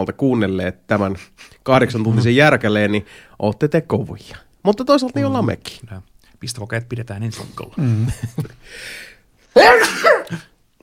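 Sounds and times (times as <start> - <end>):
speech: 0.0 - 10.5
person sneezing: 9.5 - 10.6.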